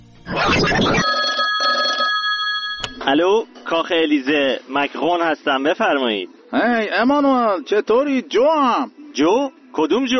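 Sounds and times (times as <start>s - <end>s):
speech: 0.2s - 1.1s, 3.1s - 10.1s
telephone ringing with high electronic tones: 0.8s - 3.5s.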